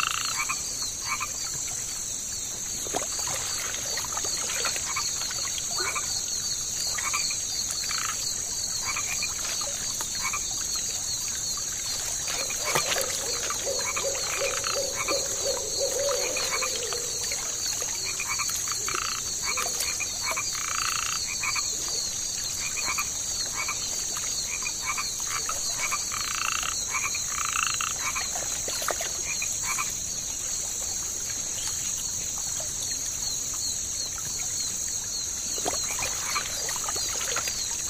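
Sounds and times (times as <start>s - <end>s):
chorus of insects and frogs in a swampy marsh at night: 0.0s - 37.8s.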